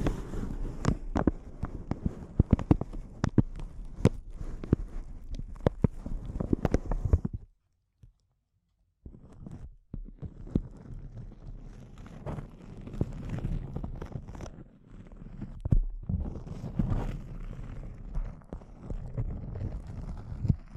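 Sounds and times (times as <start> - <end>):
dense crinkling: 0.0 - 7.5, 9.1 - 20.7.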